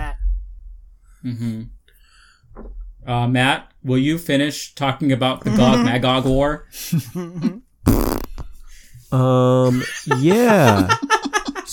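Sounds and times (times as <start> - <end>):
speech: 1.2 - 1.8, 2.6 - 7.6, 9.1 - 11.0
laughter: 5.5 - 6.3, 9.7 - 11.7
short buzzy fart noise: 7.8 - 8.5.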